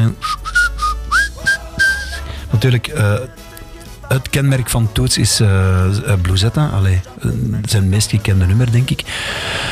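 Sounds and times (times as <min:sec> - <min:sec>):
person whistling a short melody: 0:00.0 - 0:02.4
speech: 0:02.6 - 0:03.4, 0:04.1 - 0:09.6.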